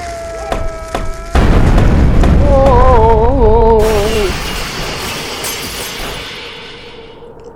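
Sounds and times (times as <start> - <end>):
wavering groaning voices: 0.0 - 4.3
video-game explosion blast with booming rumble: 0.5 - 7.2.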